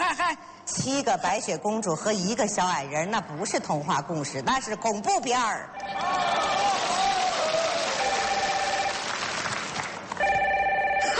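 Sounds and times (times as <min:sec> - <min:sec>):
speech: 0:00.3 - 0:06.6
crowd noise: 0:05.8 - 0:10.2
telephone ringing with an incoming call: 0:07.9 - 0:09.1, 0:10.2 - 0:11.1.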